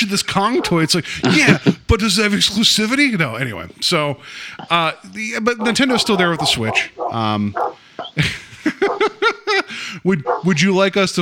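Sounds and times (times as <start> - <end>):
speech: 0.0 - 8.9, 9.9 - 11.2
dogs barking outside a window: 0.0 - 11.0
laughter: 0.0 - 11.1
dogs yipping: 0.3 - 1.8, 4.6 - 9.4, 10.1 - 10.7.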